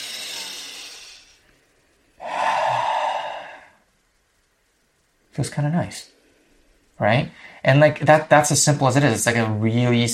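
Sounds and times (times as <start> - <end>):
slow deep breath taken as a calming exercise: 0.0 - 3.9
speech: 5.4 - 6.2, 7.0 - 10.1.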